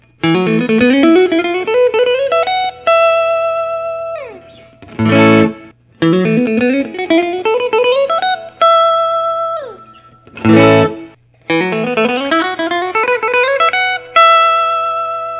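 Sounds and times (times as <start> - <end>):
Korina electric guitar: 0.0 - 15.3.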